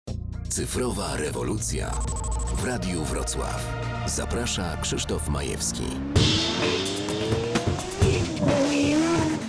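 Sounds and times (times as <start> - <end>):
speech: 0.5 - 8.6
powerful 12-cylinder combustion car engine revving: 5.4 - 9.4.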